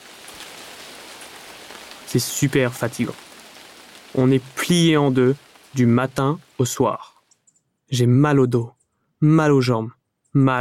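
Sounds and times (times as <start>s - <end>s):
droplets pattering on a surface: 0.0s - 7.4s
steady rain: 0.0s - 7.4s
speech: 2.1s - 3.3s, 4.1s - 7.1s, 7.9s - 10.5s.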